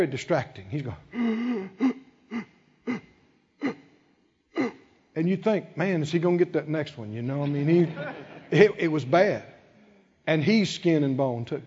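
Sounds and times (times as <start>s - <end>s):
speech: 0.0s - 1.3s, 5.2s - 9.5s, 10.3s - 11.6s
voice imitating labored wheezing breathing of a man: 1.1s - 4.9s.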